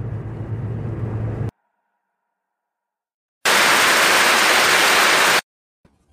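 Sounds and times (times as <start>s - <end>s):
low steady road noise inside a moving car: 0.0s - 1.5s
loud burst of hissing static: 3.5s - 5.4s.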